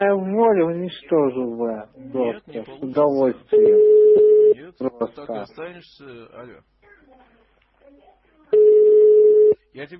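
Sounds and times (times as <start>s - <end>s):
speech: 0.0s - 6.7s, 9.8s - 9.9s
telephone busy signal after a call drops: 3.6s - 4.6s, 8.6s - 9.6s.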